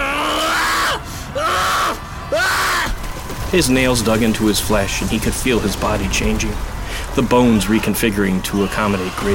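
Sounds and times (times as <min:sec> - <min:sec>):
man screaming in agony: 0:00.0 - 0:02.9, 0:08.5 - 0:09.3
speech: 0:03.5 - 0:09.3.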